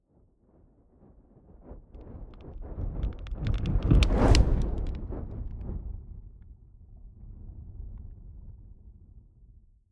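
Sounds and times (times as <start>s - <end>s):
fire whooshing and crackling: 2.4s - 5.4s.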